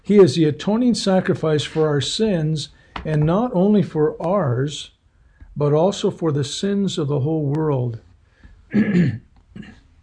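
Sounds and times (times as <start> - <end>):
speech: 0.1 - 5.0, 5.6 - 8.1, 8.7 - 9.7
throat clearing from someone with a frog in the throat: 8.7 - 10.0.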